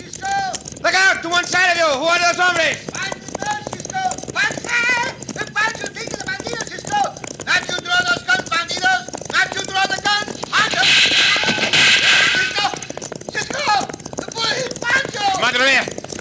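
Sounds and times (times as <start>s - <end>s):
cattle stampede rumble: 0.0s - 16.1s
galloping horse hooves: 0.0s - 16.1s
speech: 1.2s - 3.2s
people shouting excitedly: 10.6s - 12.9s.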